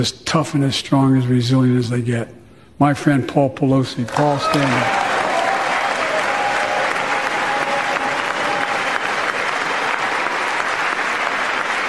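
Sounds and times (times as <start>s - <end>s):
speech: 0.0s - 5.0s
large audience applauding in a legislative chamber: 4.1s - 11.8s.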